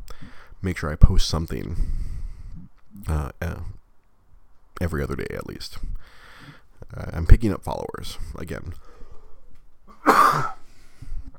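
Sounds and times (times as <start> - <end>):
faint breath: 0.1 - 0.6, 1.8 - 2.7, 5.8 - 6.7, 8.2 - 9.6, 10.6 - 11.3
speech: 0.6 - 2.0, 3.0 - 3.8, 4.8 - 6.2, 6.9 - 9.0, 10.3 - 10.6
person coughing harshly: 9.9 - 10.6.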